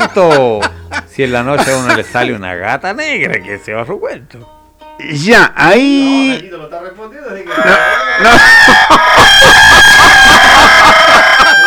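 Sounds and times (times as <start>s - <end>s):
laughter: 0.0s - 2.7s, 7.5s - 11.6s
speech: 0.2s - 10.2s
rooster crowing: 7.5s - 11.6s.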